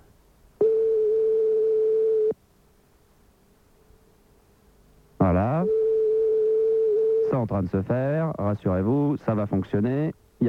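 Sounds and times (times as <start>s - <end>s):
telephone ringback tone on an outgoing call: 0.6s - 2.3s, 5.6s - 7.3s
speech: 7.5s - 10.4s.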